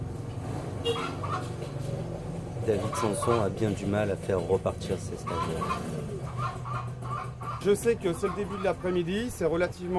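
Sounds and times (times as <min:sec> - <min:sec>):
speech: 0:00.8 - 0:01.9, 0:02.6 - 0:06.7, 0:07.6 - 0:09.9
hens clucking in an army barracks in Banda Aceh Indonesia: 0:00.9 - 0:02.0, 0:02.7 - 0:09.2.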